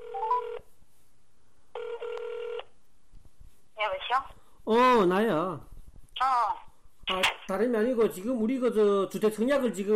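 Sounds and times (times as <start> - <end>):
phone handset ringing back in long electronic bursts: 0.0 - 0.6, 1.8 - 2.7
speech: 4.1 - 9.9.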